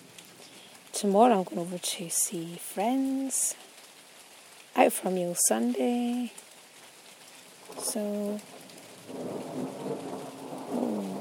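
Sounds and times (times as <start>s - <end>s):
steady rain: 0.0s - 11.1s
speech: 1.0s - 3.7s, 4.8s - 6.5s, 7.7s - 11.1s
thunder rumbling: 7.7s - 11.1s.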